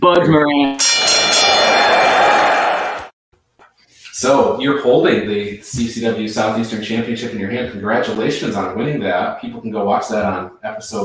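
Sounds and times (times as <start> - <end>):
speech: 0.0 - 1.1, 4.2 - 11.0
bell ringing: 0.8 - 3.1.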